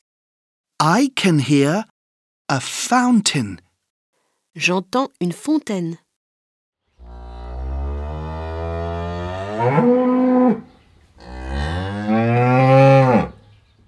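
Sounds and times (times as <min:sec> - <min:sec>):
speech: 0:00.8 - 0:01.9, 0:02.5 - 0:03.6, 0:04.6 - 0:06.0, 0:09.6 - 0:10.6
bull lowing in long deep moos: 0:07.0 - 0:13.4.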